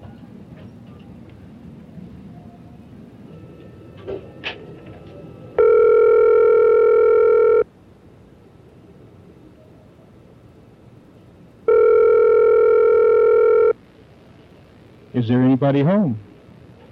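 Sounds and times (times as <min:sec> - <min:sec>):
speech: 0:04.1 - 0:04.3, 0:15.2 - 0:16.3
telephone ringing tone while a call is being placed: 0:05.6 - 0:07.7, 0:11.7 - 0:13.8.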